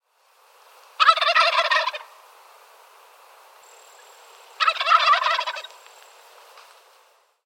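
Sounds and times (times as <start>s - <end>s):
wild turkey gobbling: 1.0s - 2.1s, 4.6s - 5.8s.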